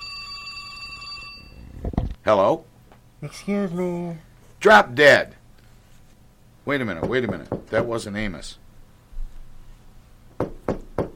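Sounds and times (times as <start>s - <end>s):
telephone bell ringing in a metallic trill: 0.0s - 1.8s
speech: 2.3s - 5.4s, 6.6s - 8.6s.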